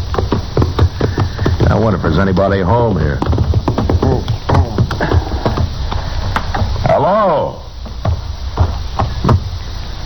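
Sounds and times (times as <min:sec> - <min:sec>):
horse hooves clip-clopping on hard ground: 0:00.0 - 0:06.8, 0:07.8 - 0:09.4
speech: 0:01.9 - 0:03.4.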